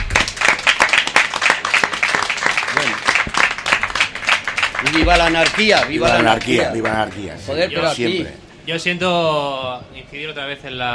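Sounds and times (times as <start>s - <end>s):
audience applause at a talk during a book fair: 0.0s - 7.3s
speech: 4.8s - 10.9s.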